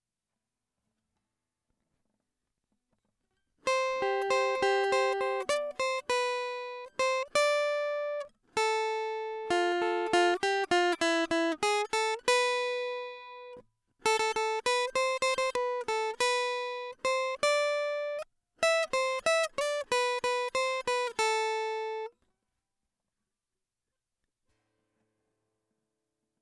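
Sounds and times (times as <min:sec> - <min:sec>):
guitar: 0:03.6 - 0:22.1.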